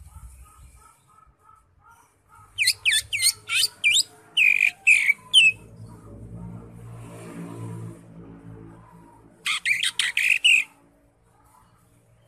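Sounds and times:
Greater Green Leafbird sharp downslurred whistled notes: 0:02.6 - 0:05.6, 0:09.5 - 0:10.7.

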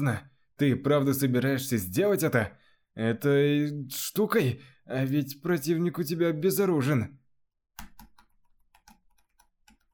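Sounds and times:
speech: 0:00.0 - 0:07.2
man typing a message on a computer keyboard: 0:07.8 - 0:09.9.

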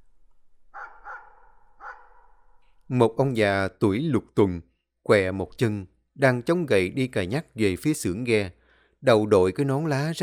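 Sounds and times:
black dog barking loudly outside the door: 0:00.8 - 0:02.6
speech: 0:02.9 - 0:10.2.

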